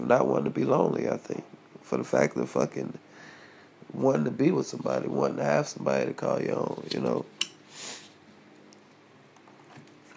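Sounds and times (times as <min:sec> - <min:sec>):
speech: 0:00.0 - 0:03.1, 0:03.9 - 0:07.9
person sniffling from a cold: 0:07.7 - 0:08.2.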